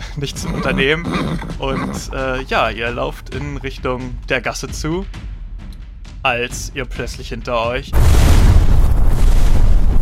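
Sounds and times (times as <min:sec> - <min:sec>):
speech: 0:00.2 - 0:05.3, 0:06.2 - 0:08.9
loud deep explosion with heavy booming: 0:07.9 - 0:10.0.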